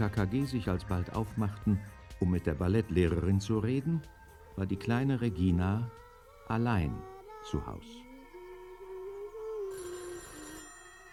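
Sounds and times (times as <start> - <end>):
speech: 0.0 - 8.0
telephone ringing with a continuous electronic bell tone: 9.7 - 11.1.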